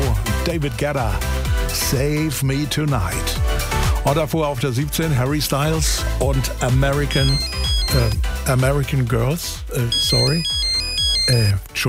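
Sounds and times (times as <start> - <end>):
speech: 0.5 - 10.6, 11.3 - 11.8
mobile phone ringtone playing a busy melodic tune: 7.1 - 8.2, 9.9 - 11.6.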